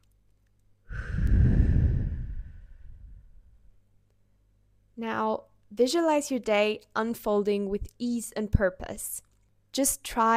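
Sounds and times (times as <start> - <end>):
deep breath during a guided meditation: 0.9 - 3.7
speech: 5.0 - 10.3.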